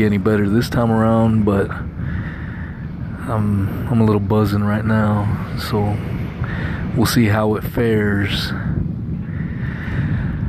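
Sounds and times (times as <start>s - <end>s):
speech: 0.0s - 2.4s, 3.3s - 8.7s
waves crashing on a beach: 0.0s - 10.4s
wind buffeting: 0.0s - 10.4s.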